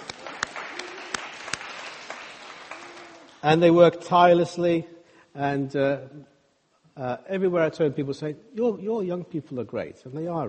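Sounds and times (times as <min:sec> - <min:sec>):
audience clapping for teenagers: 0:00.0 - 0:03.6
speech: 0:03.4 - 0:06.3, 0:07.0 - 0:10.4.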